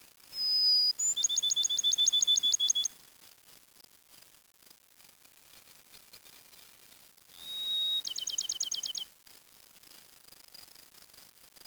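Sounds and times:
songbird whistle and trill: 0.4s - 3.0s, 7.4s - 9.1s.

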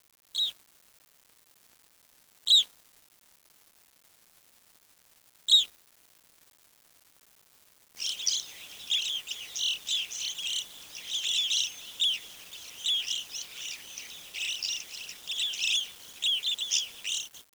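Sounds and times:
bird chirping and twittering: 8.0s - 17.5s.

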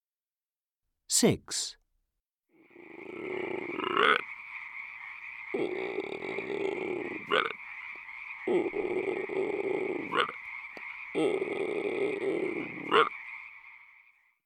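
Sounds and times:
speech: 1.2s - 1.8s
frog croaking: 2.6s - 14.4s.

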